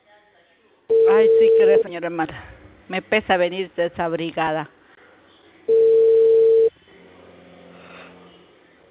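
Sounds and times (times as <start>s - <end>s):
telephone call tone: 0.9s - 1.9s, 5.7s - 6.7s
speech: 1.0s - 4.8s.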